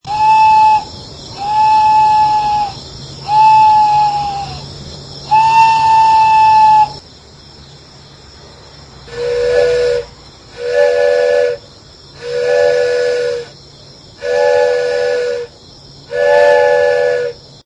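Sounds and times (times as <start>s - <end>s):
wooden train whistle: 0.0s - 4.5s, 5.3s - 7.0s, 9.1s - 11.6s, 12.2s - 13.5s, 14.2s - 15.5s, 16.1s - 17.4s.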